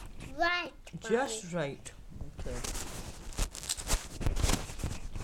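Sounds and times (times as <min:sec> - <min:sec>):
speech: 0:00.4 - 0:02.8
someone munching cheese and onion crisps and square crisps: 0:02.7 - 0:05.1.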